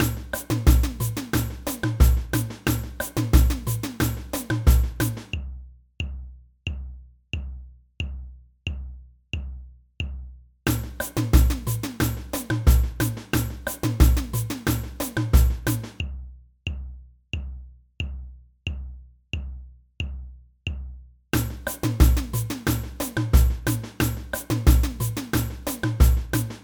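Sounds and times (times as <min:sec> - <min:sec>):
samba band: 0:00.0 - 0:05.2, 0:10.7 - 0:16.0, 0:21.4 - 0:26.6
surdo drum in a samba band: 0:00.0 - 0:06.8, 0:07.4 - 0:16.2, 0:21.4 - 0:26.6.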